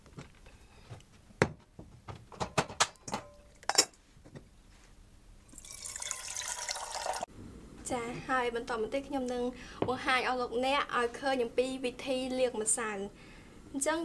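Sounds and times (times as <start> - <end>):
cookware clinking from handling: 2.9 - 4.0
water running from a tap filling a pot for boiling: 5.5 - 7.3
speech: 7.9 - 14.0.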